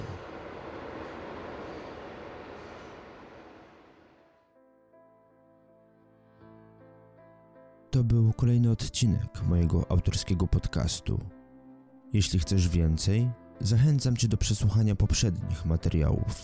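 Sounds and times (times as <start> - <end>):
train roaring past: 0.0 - 4.4
speech: 8.0 - 11.4, 12.1 - 16.4.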